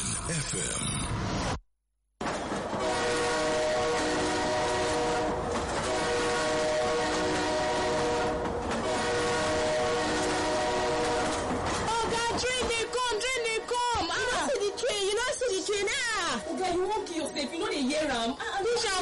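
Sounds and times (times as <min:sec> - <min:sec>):
speech: 0:00.3 - 0:01.4
passing train rumbling: 0:02.2 - 0:19.0
train horn blaring: 0:02.7 - 0:12.3.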